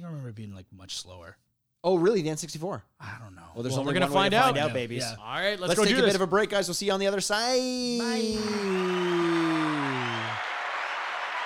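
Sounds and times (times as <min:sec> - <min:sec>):
speech: 0:00.4 - 0:10.2
dense studio audience applause: 0:08.1 - 0:11.4.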